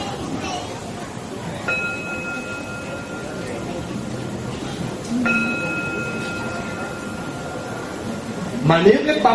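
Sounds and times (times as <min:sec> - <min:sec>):
low murmur of noise: 0:00.0 - 0:09.3
Buddhist temple bell being struck: 0:01.6 - 0:08.6
speech: 0:08.7 - 0:09.3.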